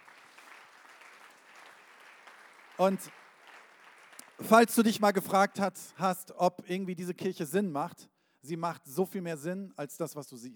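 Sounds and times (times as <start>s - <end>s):
audience applause: 0.0s - 4.7s
speech: 2.8s - 3.2s, 4.4s - 10.5s.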